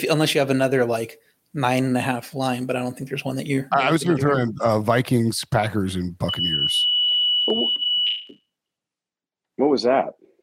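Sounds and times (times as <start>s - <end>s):
speech: 0.0s - 6.8s, 7.5s - 7.8s, 9.6s - 10.2s
man speaking muffled: 3.7s - 6.8s
building fire alarm high-pitched tone: 6.2s - 8.5s.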